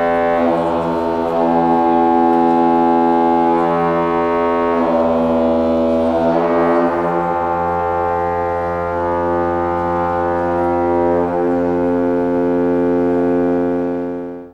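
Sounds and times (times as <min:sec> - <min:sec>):
pipe organ effect: 0:00.0 - 0:14.5.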